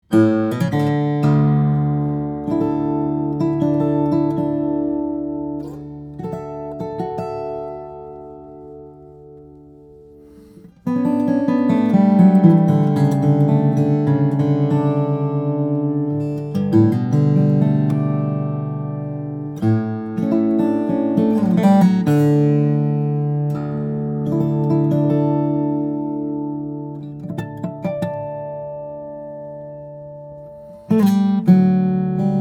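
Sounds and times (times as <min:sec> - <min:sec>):
Ryan Signature Nightingale flattop steel string guitar of Brazilian rosewood and cedar: 0:00.0 - 0:32.4.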